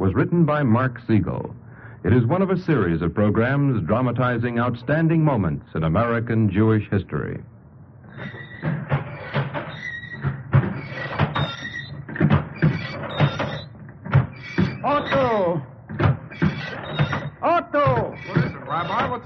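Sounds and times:
speech: 0.1s - 7.5s, 8.2s - 9.0s
old printing press creaking as it runs: 8.1s - 19.2s.

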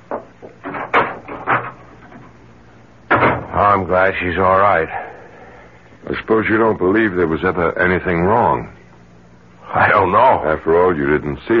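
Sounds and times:
wooden door opening and closing: 0.1s - 2.4s, 3.1s - 3.6s
speech: 3.6s - 5.0s, 6.1s - 8.8s, 9.7s - 11.5s.

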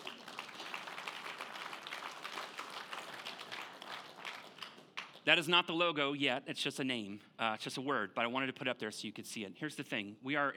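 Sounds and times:
church audience applauding: 0.0s - 5.2s
speech: 5.3s - 10.5s.

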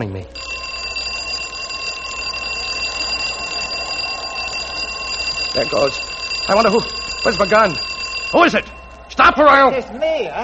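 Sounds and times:
speech: 0.0s - 0.4s, 5.5s - 10.4s
alarm clock rigged as a tripwire alarm ringing: 0.3s - 10.0s.

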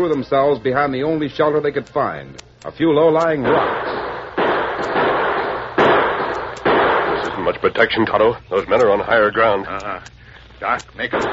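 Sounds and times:
speech: 0.0s - 4.0s, 7.4s - 11.3s
dense hissing wash of noise: 0.0s - 11.3s
gunshots from outlaws' guns as a Western radio drama effect: 3.3s - 7.6s, 11.0s - 11.3s.

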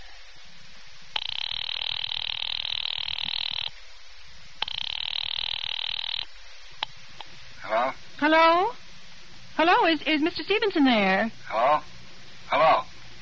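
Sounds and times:
telephone ringing through a receiver on a call to an office: 1.2s - 3.7s, 4.7s - 6.3s
speech: 8.2s - 8.9s, 9.6s - 11.9s, 12.5s - 12.9s.

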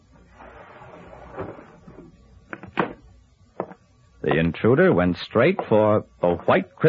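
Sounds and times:
window frame grinding and creaking as it is forced open: 0.2s - 2.2s
speech: 4.2s - 6.8s.

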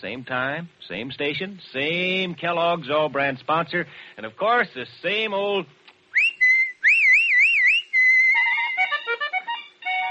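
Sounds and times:
speech: 0.0s - 5.8s
person whistling a lively tune: 6.2s - 8.6s.

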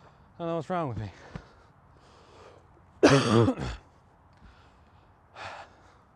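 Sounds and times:
speech: 0.4s - 1.3s, 3.1s - 3.8s
person out of breath on a walk coughing harshly: 3.0s - 3.8s.

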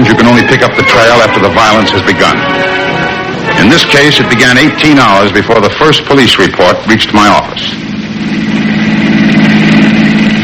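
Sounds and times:
speech: 0.6s - 3.0s, 3.6s - 8.5s
car engine idling: 7.5s - 10.4s.

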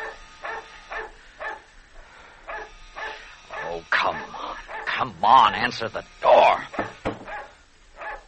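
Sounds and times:
dog barking: 0.0s - 1.7s, 2.5s - 5.0s, 7.2s - 8.2s
speech: 5.0s - 6.9s.

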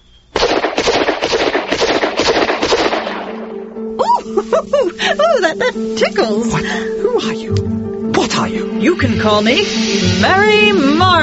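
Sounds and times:
rapid gunfire: 0.4s - 3.4s
laughter: 4.0s - 5.8s
speech: 4.4s - 11.2s.

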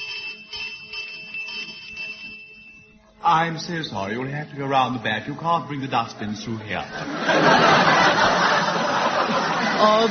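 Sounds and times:
bell ringing loudly with metallic pulsing: 0.0s - 4.6s
speech: 3.2s - 8.5s, 9.8s - 10.1s
laughter: 6.8s - 10.1s.

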